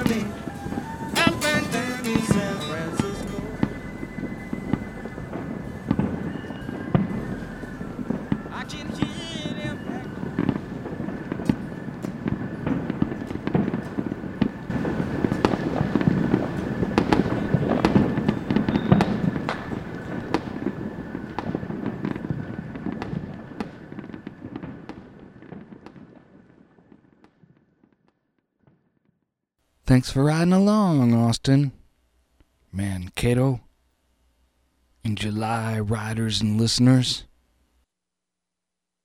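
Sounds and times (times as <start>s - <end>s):
fireworks banging and crackling: 0.0s - 29.0s
steady low rumble of noise: 3.0s - 21.4s
speech: 29.9s - 31.8s, 32.8s - 33.6s, 35.0s - 37.3s.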